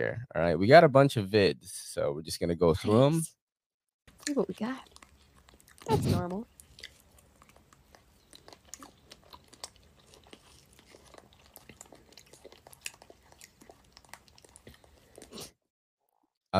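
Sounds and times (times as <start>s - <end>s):
speech: 0.0s - 3.4s, 4.2s - 4.9s, 5.8s - 6.5s
woman chewing crunchy food: 4.1s - 15.6s.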